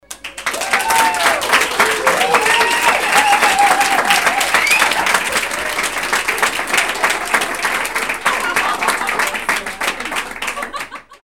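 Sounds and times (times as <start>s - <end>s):
applause: 0.0s - 11.2s
people laughing: 1.8s - 11.2s.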